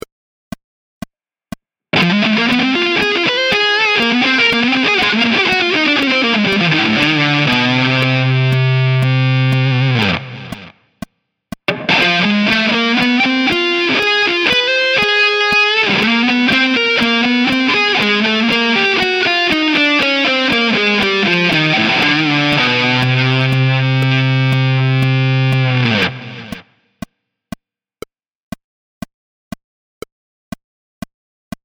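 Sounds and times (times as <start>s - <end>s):
chromatic riffs: 2.0s - 10.7s, 11.7s - 26.6s.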